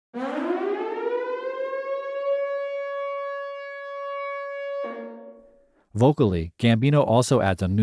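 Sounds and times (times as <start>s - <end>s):
harsh warning siren in a love song: 0.1s - 5.6s
speech: 6.0s - 7.8s.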